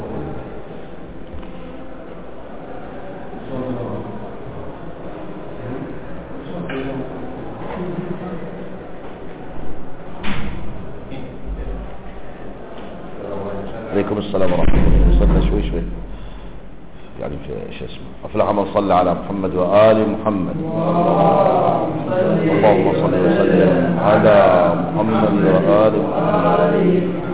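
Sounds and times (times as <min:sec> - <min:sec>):
faint murmuring voices: 0:00.0 - 0:17.2, 0:19.2 - 0:27.3
speech: 0:18.9 - 0:27.2.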